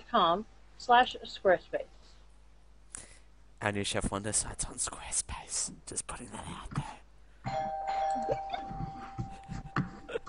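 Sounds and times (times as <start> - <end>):
speech: 0.1 - 2.0, 3.6 - 9.0
doorbell ding-dong chime: 7.5 - 10.0.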